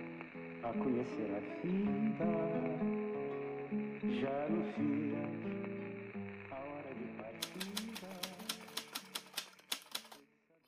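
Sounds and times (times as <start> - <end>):
soft music: 0.0 - 10.2
speech: 0.6 - 3.1, 3.7 - 5.7
mechanical typewriter key strikes: 7.4 - 10.2.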